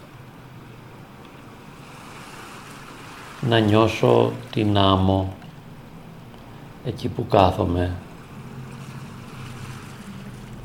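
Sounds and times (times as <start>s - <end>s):
faint breezy rush: 0.0s - 10.6s
small gentle sea waves washing against a sandy shore: 1.3s - 6.8s, 7.6s - 10.6s
speech: 3.4s - 5.4s, 6.8s - 8.0s.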